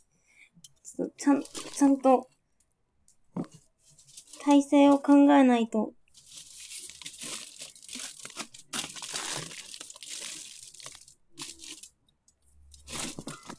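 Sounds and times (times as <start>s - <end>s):
speech: 1.0s - 2.3s, 4.4s - 6.0s
aluminium foil crinkling and crumpling: 1.3s - 2.1s, 4.0s - 5.2s, 6.1s - 12.0s, 12.7s - 13.5s.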